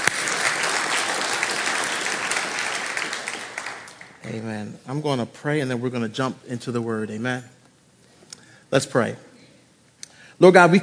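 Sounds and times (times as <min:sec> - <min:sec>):
audience clapping hands in sustained applause: 0:00.0 - 0:04.2
speech: 0:04.2 - 0:07.6, 0:08.7 - 0:09.3, 0:10.4 - 0:10.8.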